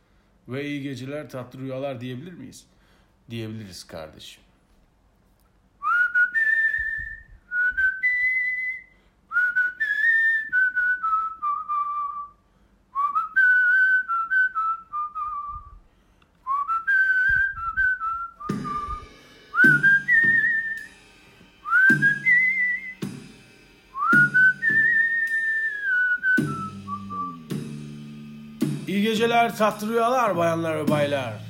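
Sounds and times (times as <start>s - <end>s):
speech: 0.5s - 4.5s, 29.5s - 31.4s
person whistling a song's melody: 5.8s - 15.8s, 16.4s - 21.0s, 21.6s - 23.3s, 23.9s - 28.0s
low accompaniment: 18.4s - 31.4s.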